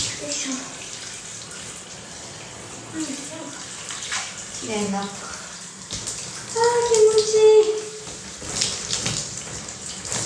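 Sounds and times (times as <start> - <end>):
water pouring and rinsing in a bath: 0.0 - 10.2
speech: 0.4 - 0.8, 3.0 - 3.7, 4.6 - 5.3, 6.8 - 7.8.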